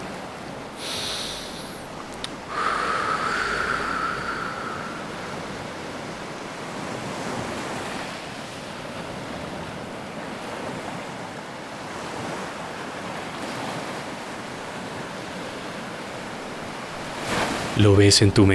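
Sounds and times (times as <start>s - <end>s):
ocean waves washing onto a beach: 0.0s - 18.5s
speech: 17.8s - 18.5s.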